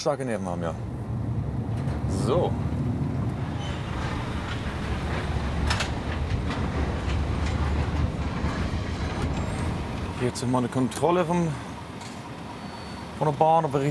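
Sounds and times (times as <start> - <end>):
speech: 0.0 - 1.0, 2.1 - 2.9, 10.2 - 11.6, 13.2 - 13.8
continuous rumble of a car-carrier train: 0.0 - 13.8
metallic clanks and rattles from car-carrier train wagons: 1.3 - 12.4.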